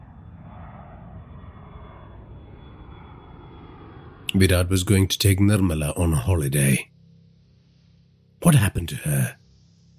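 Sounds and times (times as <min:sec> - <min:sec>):
airplane passing high overhead: 0:00.0 - 0:09.2
speech: 0:04.3 - 0:06.9, 0:08.4 - 0:09.4.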